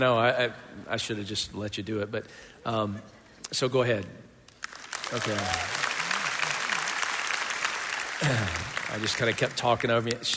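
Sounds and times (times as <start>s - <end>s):
speech: 0.0s - 4.3s, 5.1s - 5.8s, 8.2s - 10.3s
audience applause: 4.6s - 10.3s.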